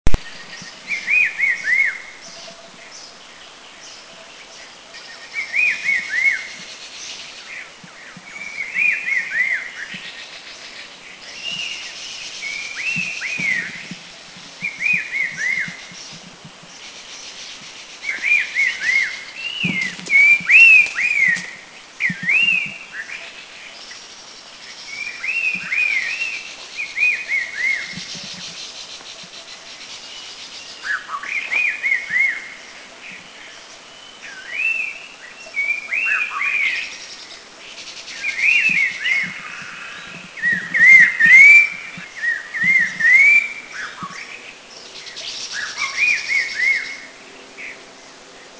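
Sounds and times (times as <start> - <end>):
Red-faced Liocichla calling in Thailand: 0.1 - 3.3, 4.0 - 24.0, 24.6 - 47.8.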